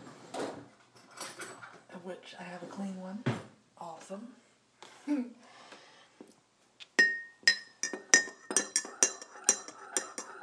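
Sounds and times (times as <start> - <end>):
speech: 2.1 - 4.4, 5.0 - 5.4
spoon clinking against a cup while stirring coffee: 7.0 - 10.4.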